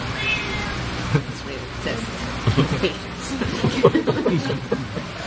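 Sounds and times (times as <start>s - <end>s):
male Sphynx cat meowing for attention outside a house: 0.1s - 0.8s
laughter: 2.4s - 5.2s.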